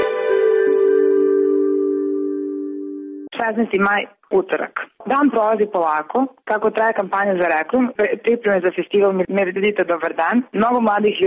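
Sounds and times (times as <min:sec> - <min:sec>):
bell-like ringing tone of a call to answer: 0:00.0 - 0:03.3
speech: 0:03.5 - 0:11.2.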